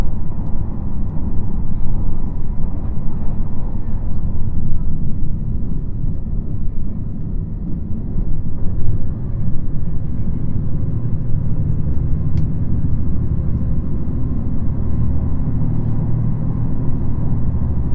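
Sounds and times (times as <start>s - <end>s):
diesel railcar running: 0.0s - 17.9s.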